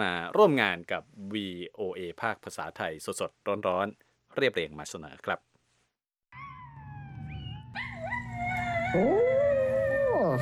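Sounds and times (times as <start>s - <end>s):
speech: 0.0s - 5.5s, 8.9s - 9.4s
small dog howling along with recording: 6.4s - 10.4s.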